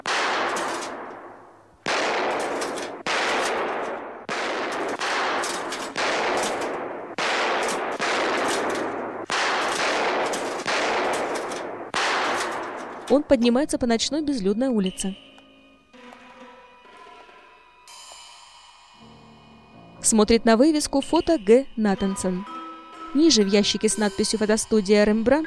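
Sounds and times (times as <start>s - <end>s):
gunshots at a shooting gallery: 0.0s - 13.2s
speech: 13.1s - 15.3s, 20.1s - 22.5s, 23.1s - 25.4s.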